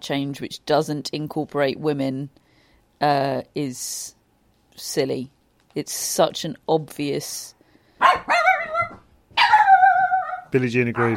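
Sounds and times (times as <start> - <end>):
speech: 0.0 - 2.4, 3.0 - 4.2, 4.8 - 8.4, 10.5 - 11.1
dog barking: 8.0 - 11.1.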